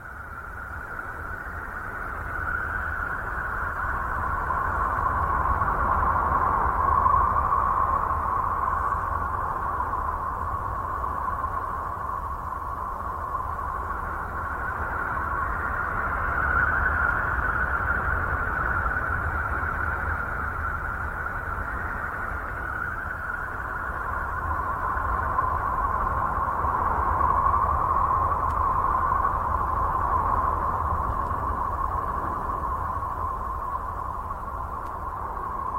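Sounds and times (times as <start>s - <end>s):
eerie whistling drone from a space probe recording of a Uranus flyby: 0.0s - 35.7s.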